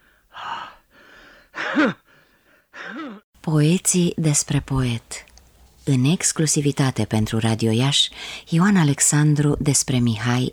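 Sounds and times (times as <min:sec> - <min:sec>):
heavy gasping breaths with strained voiced catch: 0:00.0 - 0:03.2
speech: 0:01.8 - 0:02.0, 0:02.9 - 0:10.5.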